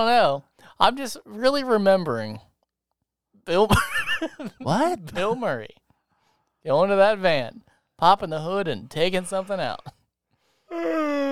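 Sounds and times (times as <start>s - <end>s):
speech: 0.0s - 2.5s, 3.4s - 5.8s, 6.6s - 10.0s, 10.7s - 11.3s
laughter: 3.6s - 5.6s
loud drawn-out yawn: 10.7s - 11.3s.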